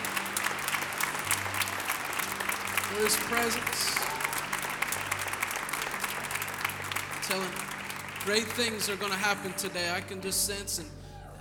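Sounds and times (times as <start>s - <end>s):
congregation clapping hands during a worship service: 0.0s - 10.8s
speech: 2.9s - 4.1s, 7.3s - 11.0s.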